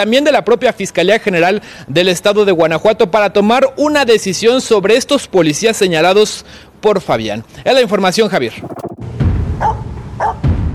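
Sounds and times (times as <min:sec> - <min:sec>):
speech: 0:00.0 - 0:08.8
Pomeranian barking: 0:09.6 - 0:10.4.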